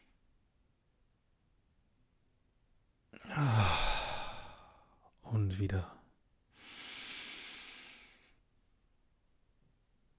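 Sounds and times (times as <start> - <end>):
deep breathing in and out: 3.2 - 5.0, 6.6 - 8.4
speech: 5.5 - 6.0.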